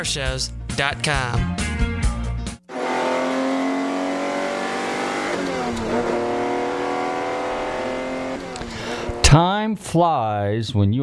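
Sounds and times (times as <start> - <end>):
speech: 0.0 - 1.9, 9.3 - 11.0
Ferrari engine revving and accelerating with gear shifts: 2.7 - 9.4.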